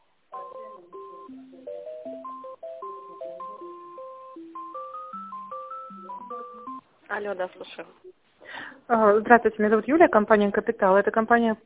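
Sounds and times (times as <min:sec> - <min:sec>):
phone ringtone playing a New Year melody: 0:00.4 - 0:06.8
speech: 0:07.1 - 0:08.0, 0:08.9 - 0:11.6.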